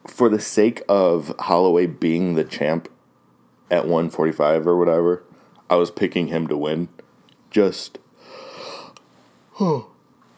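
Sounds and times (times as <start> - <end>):
speech: 0.2 - 3.0, 3.7 - 8.4, 9.6 - 9.9
drawn-out yawn with groans: 8.5 - 10.0.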